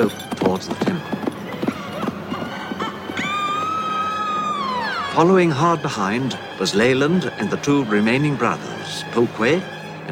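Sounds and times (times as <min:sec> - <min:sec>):
speech: 0:00.0 - 0:01.3, 0:05.2 - 0:10.1
hooves of a ridden horse galloping: 0:00.0 - 0:04.6
long high steady horse whinny: 0:00.0 - 0:06.6.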